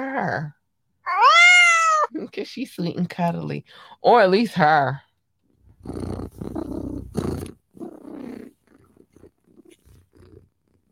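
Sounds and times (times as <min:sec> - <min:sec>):
speech: 0:00.2 - 0:00.6, 0:02.1 - 0:05.0, 0:05.8 - 0:06.2
person imitating a cat purring: 0:05.8 - 0:10.9.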